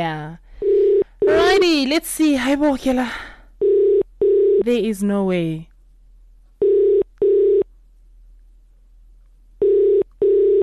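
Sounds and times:
speech: 0.0 - 0.4, 1.3 - 3.2, 4.6 - 5.7
ringback tone from an outgoing phone call: 0.6 - 1.6, 6.6 - 7.6, 9.6 - 10.6.

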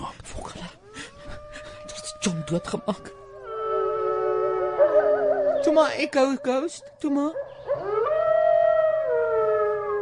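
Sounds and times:
wolf howling: 0.8 - 6.7, 7.4 - 10.0
speech: 2.2 - 3.2, 5.8 - 8.0.

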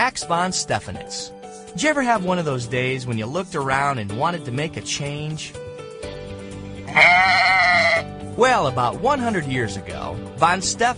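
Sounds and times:
speech: 0.1 - 5.7, 8.4 - 10.9
sheep bleating: 6.9 - 8.1.

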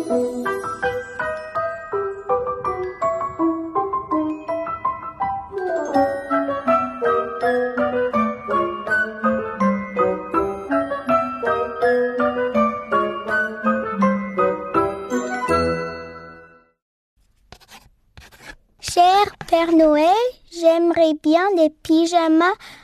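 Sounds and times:
tinkling piano-like melody: 0.0 - 16.8
speech: 0.1 - 0.5, 21.7 - 22.8
child speaking French: 5.5 - 6.2, 18.8 - 22.6
pen scratching on paper as a child writes a list: 17.5 - 18.6.

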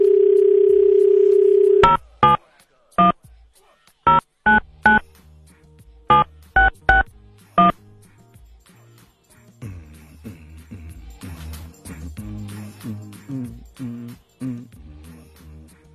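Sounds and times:
telephone dial tone: 0.0 - 2.0
touch-tone beeps of a phone number being dialed: 0.0 - 2.4, 4.1 - 5.0, 6.1 - 7.7.

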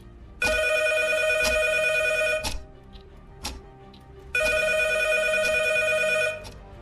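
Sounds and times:
phone ringing at a desk: 0.4 - 2.6, 4.4 - 6.5.

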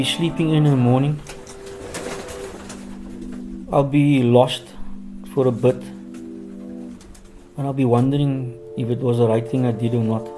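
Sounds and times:
speech: 0.0 - 1.3, 3.7 - 4.7, 5.3 - 5.9, 7.6 - 10.3
pigeons cooing: 0.0 - 10.3.

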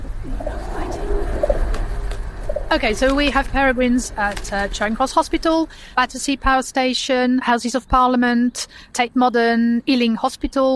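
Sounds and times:
pigeon cooing: 0.0 - 2.8
steady rumble: 0.0 - 6.6
speech: 2.7 - 10.7.

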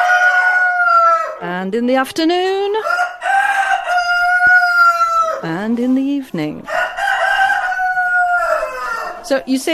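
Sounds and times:
Gaulois Doré rooster crowing: 0.0 - 1.4, 2.8 - 5.4, 6.7 - 9.4
speech: 1.4 - 3.0, 5.4 - 6.8, 9.3 - 9.7.

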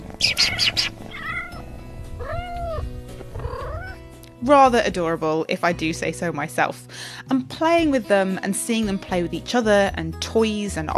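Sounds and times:
kitten meowing at home: 0.1 - 4.0
speech: 4.4 - 10.9.

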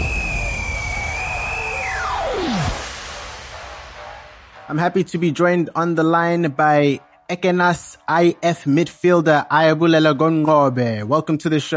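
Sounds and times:
jet airplane taking off: 0.0 - 4.7
high jet engine whine: 0.0 - 6.4
speech: 4.7 - 11.7.

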